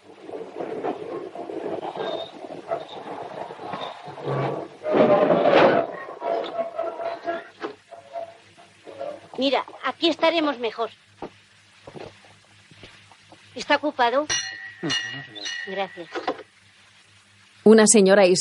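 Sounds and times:
passenger train rumbling along the rails: 0.0s - 7.2s
rattling and clatter: 0.0s - 9.4s
speech: 9.4s - 11.0s, 13.6s - 16.3s, 17.7s - 18.3s.

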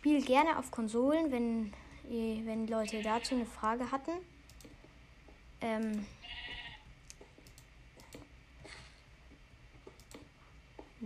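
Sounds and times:
speech: 0.0s - 4.3s, 5.6s - 6.4s
sheep bleating in a cave in a video game: 6.2s - 6.8s.

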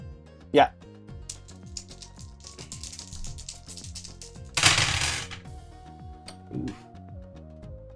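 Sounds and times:
speech: 0.5s - 0.8s
four dice clattering and tumbling across a hard surface: 1.3s - 5.5s.

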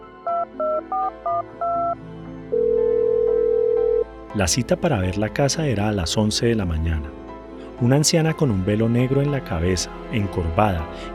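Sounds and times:
touch-tone telephone keypad dialing a number: 0.3s - 2.0s
steady continuous telephone tone: 0.3s - 4.1s
speech: 0.5s - 2.6s, 4.4s - 7.2s, 7.8s - 11.1s.

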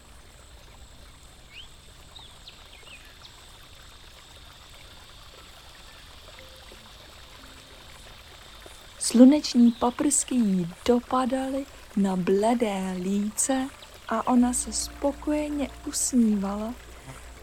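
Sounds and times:
speech: 9.1s - 17.4s
continuous rush of flowing river water: 13.0s - 17.4s.

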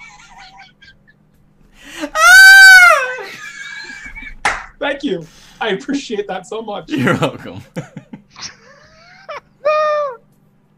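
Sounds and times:
laughter: 0.0s - 1.2s, 3.1s - 4.5s, 6.9s - 10.1s
person imitating a girly scream: 2.0s - 3.4s
speech: 4.8s - 8.1s.

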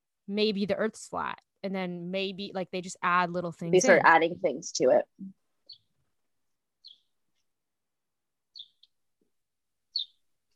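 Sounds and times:
speech: 0.3s - 5.4s
bird tweeting: 5.7s - 5.9s, 6.8s - 7.1s, 8.5s - 8.9s, 9.9s - 10.2s.

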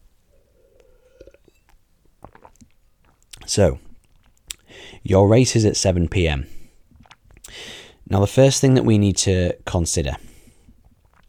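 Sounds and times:
person sipping a drink: 0.3s - 4.7s, 6.9s - 7.6s, 10.7s - 11.2s
faint swallow: 0.7s - 4.6s, 6.9s - 7.5s, 10.8s - 11.2s
small wet mouth clicks: 1.2s - 4.7s
speech: 3.5s - 3.8s, 5.0s - 6.6s, 8.1s - 10.3s.

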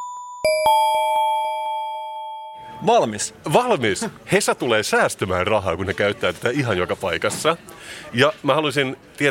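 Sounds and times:
short three-note jingle of bright bell-like tones: 0.4s - 3.0s
speech: 2.8s - 9.2s.

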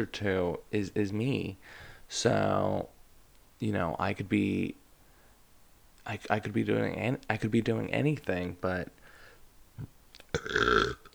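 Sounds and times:
speech: 0.0s - 3.0s, 3.6s - 4.8s, 6.0s - 9.0s, 9.8s - 11.0s
small throaty sound: 9.8s - 11.1s
loud drawn-out resonant burp: 10.3s - 11.1s.

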